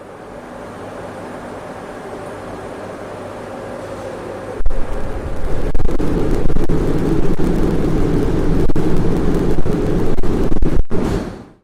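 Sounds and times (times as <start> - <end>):
fusion reactor plasma reaction as a continuous low crackling roar: 4.6 - 11.1.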